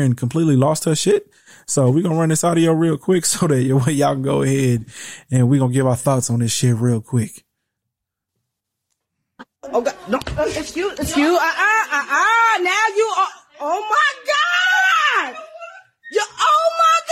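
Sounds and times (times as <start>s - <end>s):
speech: 0.0s - 7.4s, 9.6s - 15.4s
laughter: 9.6s - 13.1s, 15.0s - 16.4s
woman screaming and sobbing in a store after another woman tried to hit her: 11.2s - 17.1s.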